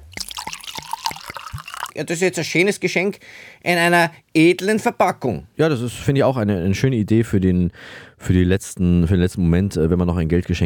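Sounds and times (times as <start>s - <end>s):
whisky glugging into a whisky glass: 0.0s - 2.0s
whisky trickling: 0.0s - 2.1s
speech: 2.0s - 10.6s.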